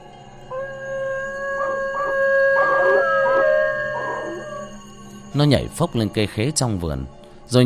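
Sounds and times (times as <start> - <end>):
dog on an outhouse roof howling mournfully: 0.5 - 4.8
speech: 5.4 - 7.6.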